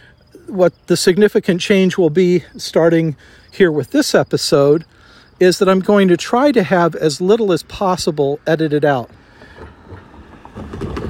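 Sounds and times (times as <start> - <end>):
speech: 0.5 - 9.2
car rolling over railroad tracks with low steady road rumble: 4.6 - 11.0
car wheels rattling and thumping over railroad rails: 9.0 - 11.0.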